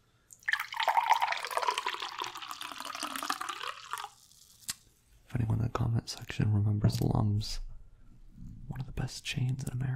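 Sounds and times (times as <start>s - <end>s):
bottled herbal tea pouring into a glass goblet: 0.4s - 4.6s
speech: 6.0s - 7.7s, 9.0s - 9.9s.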